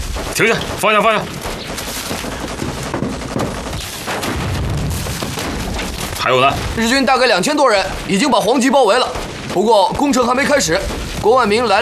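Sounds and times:
dense continuous battle gunfire: 0.0s - 11.8s
heavy booming artillery blasts: 0.0s - 11.8s
speech: 0.4s - 1.4s, 6.3s - 11.8s.

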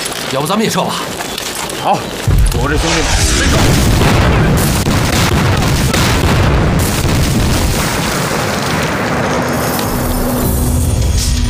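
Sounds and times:
speech: 0.3s - 4.7s
bombs exploding: 2.2s - 11.4s.

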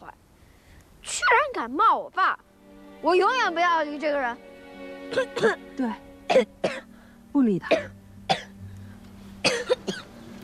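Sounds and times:
speech: 1.6s - 4.5s, 5.1s - 6.5s, 7.4s - 8.0s
sharp harsh coughs: 6.3s - 6.8s, 7.7s - 8.5s, 9.5s - 10.1s.

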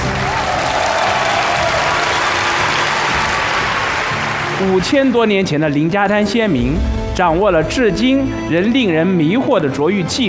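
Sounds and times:
audience applause: 0.0s - 5.3s
speech: 4.6s - 10.2s.

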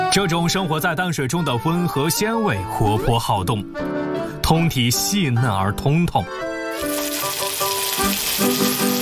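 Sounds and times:
speech: 0.2s - 7.0s
freshwater river shrimp frying in a wok: 6.8s - 9.0s.

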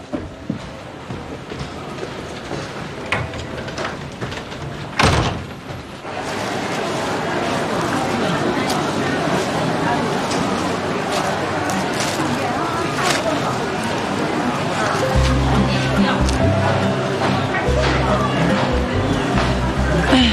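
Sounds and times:
faint murmur of voices: 0.0s - 20.3s
door shutting: 4.9s - 5.8s.

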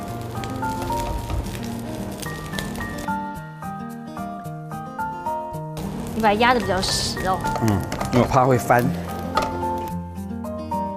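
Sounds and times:
scallion pancake sizzling in oil in a frying pan: 0.0s - 3.3s, 5.7s - 9.9s
light music: 0.0s - 10.9s
speech: 6.2s - 9.0s.

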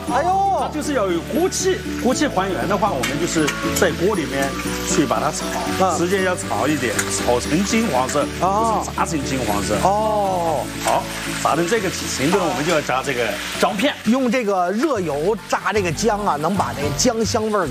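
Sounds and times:
goose frying in a hot wok: 0.0s - 17.7s
man talking: 0.0s - 17.7s.

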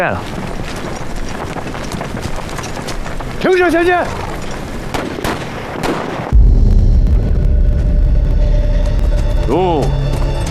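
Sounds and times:
speech: 0.0s - 0.4s, 3.4s - 4.3s, 9.5s - 10.0s
gunshots: 4.9s - 7.2s
loud steady low rumble: 6.4s - 10.4s.

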